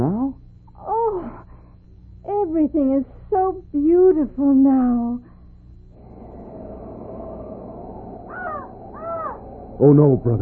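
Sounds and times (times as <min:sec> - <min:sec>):
speech: 0:02.6 - 0:05.3, 0:09.8 - 0:10.4
raven croaking: 0:05.9 - 0:10.4
steady noisy bed: 0:05.9 - 0:10.4.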